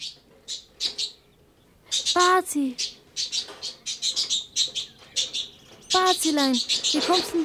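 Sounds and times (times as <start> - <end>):
caged bird chirping: 0.0 - 7.4
speech: 2.2 - 3.0, 6.0 - 7.4.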